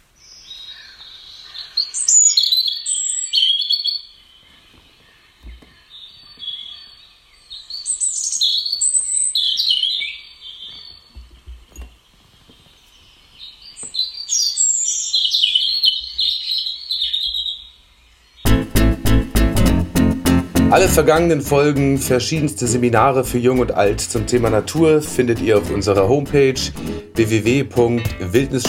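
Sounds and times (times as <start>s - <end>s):
European robin singing from phone speaker: 0.2s - 19.0s, 20.6s - 28.6s
loud rhythmic music: 18.5s - 28.6s
speech: 20.8s - 28.6s.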